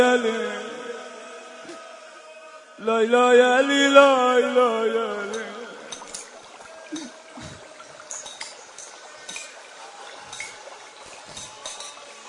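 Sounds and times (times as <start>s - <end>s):
speech: 0.0s - 0.7s, 2.8s - 5.5s
running water: 0.0s - 12.2s.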